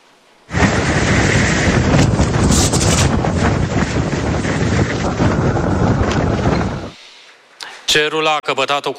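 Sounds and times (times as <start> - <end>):
strong sandstorm wind at nearly 100 km/h in western Iraq: 0.4 - 7.0
speech: 7.9 - 8.9.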